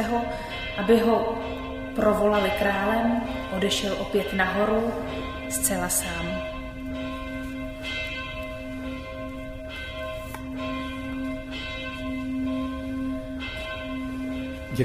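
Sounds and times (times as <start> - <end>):
speech: 0.0 - 6.5
church bells ringing, calling to service: 0.0 - 14.8.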